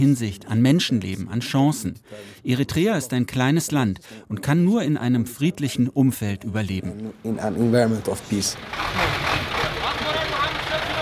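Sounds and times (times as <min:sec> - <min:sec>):
speech: 0:00.0 - 0:09.5
truck engine rumbling and idling while maneuvering into parking space: 0:07.1 - 0:11.0.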